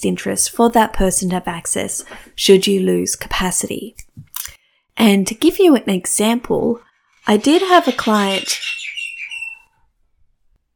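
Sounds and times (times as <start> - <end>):
speech: 0.0 - 8.8
birds chirping: 7.3 - 9.7.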